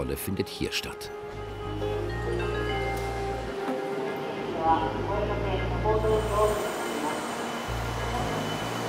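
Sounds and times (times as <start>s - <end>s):
speech: 0.0s - 2.2s, 4.6s - 6.7s
low rumble and bustle of a busy train station: 1.2s - 8.8s
music box melody at a train station entrance: 1.5s - 3.6s.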